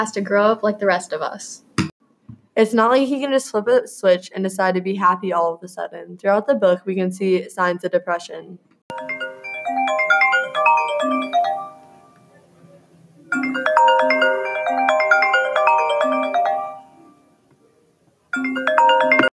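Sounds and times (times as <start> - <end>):
speech: 0.0 - 1.7, 2.6 - 9.1
electronic telephone ringtone for an incoming call: 8.9 - 12.3, 13.3 - 17.4, 18.3 - 19.3.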